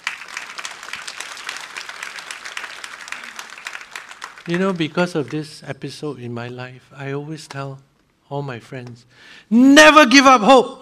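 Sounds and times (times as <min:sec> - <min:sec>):
large crowd of people clapping: 0:00.0 - 0:05.7
speech: 0:04.5 - 0:10.8.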